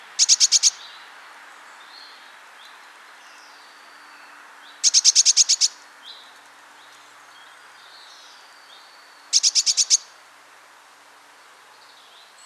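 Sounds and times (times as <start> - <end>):
Eurasian blue tit calls: 0.2 - 0.9, 4.8 - 5.8, 9.3 - 10.2.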